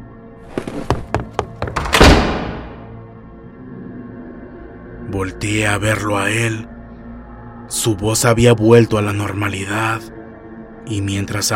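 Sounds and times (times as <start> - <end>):
hollow thuds: 0.5 - 2.9
door slamming shut by itself: 1.6 - 3.0
speech: 5.1 - 6.7, 7.8 - 10.2, 10.9 - 11.5.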